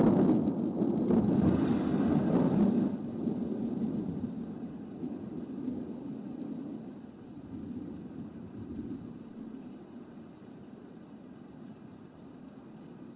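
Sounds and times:
rumbling thunder: 0.0s - 10.2s.

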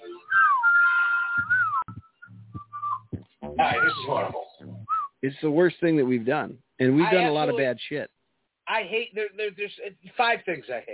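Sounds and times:
person whistling a Christmas tune: 0.0s - 4.1s, 4.9s - 5.1s
soft low sounds: 1.4s - 5.1s
speech: 3.6s - 4.4s, 5.2s - 8.1s, 8.8s - 10.9s.

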